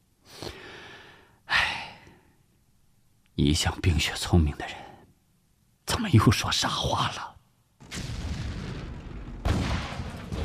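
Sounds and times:
speech: 3.4s - 4.9s, 6.0s - 7.3s
distant artillery fire: 7.8s - 10.4s
heavy blast: 7.8s - 10.4s.

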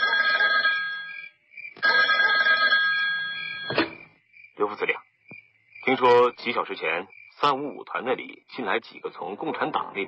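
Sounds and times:
telephone bell ringing: 0.0s - 3.9s
speech: 6.0s - 10.0s.

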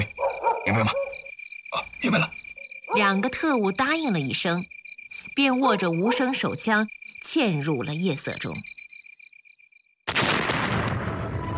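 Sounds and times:
crickets chirping: 0.0s - 10.1s
speech: 0.7s - 1.0s, 2.0s - 4.7s, 5.4s - 8.7s
explosives blowing up in a warehouse: 10.1s - 11.5s.

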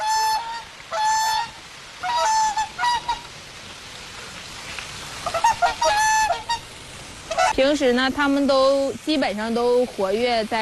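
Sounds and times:
large winter migrant waterfowl honking: 0.0s - 3.3s, 5.2s - 7.7s
speech: 7.6s - 10.6s.

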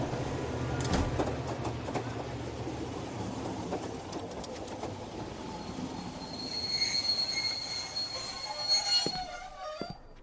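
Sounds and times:
train arriving at a station with rumbling clatter: 0.0s - 10.0s
high metallic train wheel squeals: 5.5s - 10.2s.

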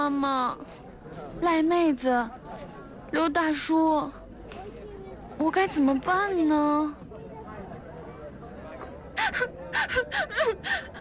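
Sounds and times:
speech: 0.0s - 4.2s, 5.4s - 7.0s, 9.2s - 10.9s
person crying in gasping sobs and whimpers: 9.2s - 10.9s.

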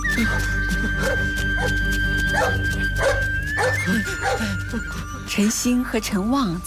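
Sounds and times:
speech: 0.2s - 6.6s
big yellow dog barking and yipping: 0.3s - 4.4s.

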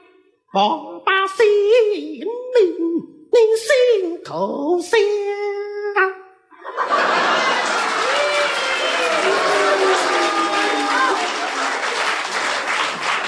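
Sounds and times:
speech: 0.5s - 6.1s
laughter: 6.6s - 8.3s
audience applause at a comic crosstalk performance: 6.9s - 13.2s.

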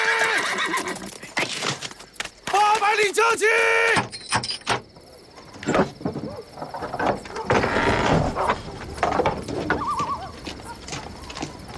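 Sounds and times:
horse whinnying: 0.0s - 1.1s
horse hooves striking the ground: 0.0s - 2.9s, 4.9s - 11.7s
speech: 3.1s - 4.2s.

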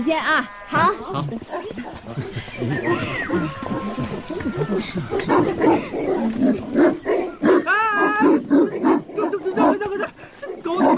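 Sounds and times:
speech: 0.0s - 7.1s
dogs barking in sharp yaps: 1.5s - 10.9s.

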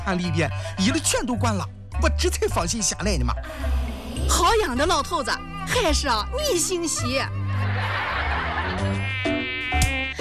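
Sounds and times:
speech: 0.0s - 8.1s, 8.8s - 9.1s
laughter: 7.2s - 9.1s
high-pitched mosquito whine: 8.8s - 10.1s.

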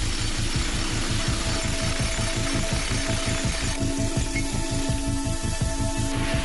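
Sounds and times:
rock drill boring holes into hard-rock tunnel walls: 0.0s - 4.5s
hard-rock tunnel boring machine hum and roar: 0.0s - 6.4s.

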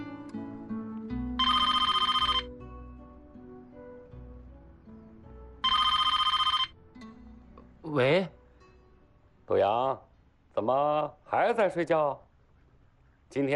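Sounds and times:
telephone ringing: 1.4s - 2.5s, 5.6s - 6.8s
speech: 7.9s - 8.4s, 9.5s - 10.0s, 10.6s - 12.3s, 13.3s - 13.5s.

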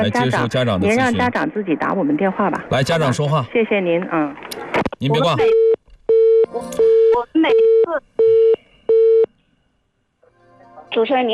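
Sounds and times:
speech: 0.0s - 5.6s, 10.9s - 11.3s
telephone busy tone after the other party hung up: 5.4s - 9.3s.

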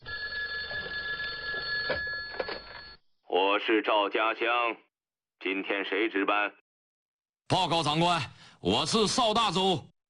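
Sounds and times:
old-fashioned telephone bell ringing: 0.0s - 3.0s
speech: 1.9s - 2.1s, 3.4s - 6.6s, 7.5s - 9.9s.

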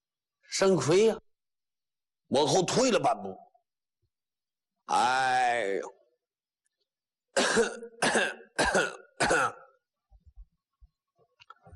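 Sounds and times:
speech: 0.5s - 1.2s, 2.3s - 3.4s, 4.9s - 6.0s, 7.4s - 9.6s
old beggar giving hollow rattling coughs: 7.4s - 9.8s.

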